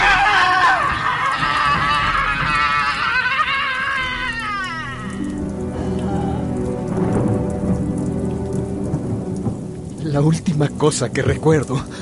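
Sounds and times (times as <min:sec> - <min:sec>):
woman screaming in pain: 0:00.0 - 0:05.4
heavy rain pouring: 0:00.0 - 0:12.0
loud deep thunder rumbling: 0:00.0 - 0:12.0
speech: 0:10.2 - 0:12.0.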